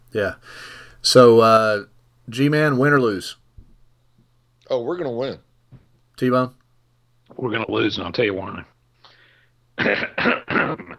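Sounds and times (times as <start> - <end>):
speech: 0.1 - 3.4, 4.7 - 6.6, 7.3 - 8.7, 9.8 - 10.9
harsh rasping coughs brought on by drinking water: 9.8 - 10.9.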